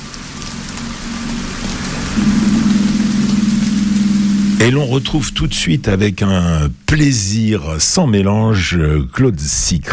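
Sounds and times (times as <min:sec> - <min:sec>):
rain falling over open water: 0:00.0 - 0:09.9
film soundtrack music: 0:02.2 - 0:07.9
speech: 0:04.6 - 0:09.9.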